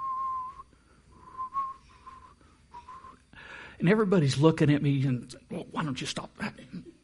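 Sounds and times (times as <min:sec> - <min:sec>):
person whistling a tune: 0:00.0 - 0:03.2
speech: 0:03.8 - 0:06.8.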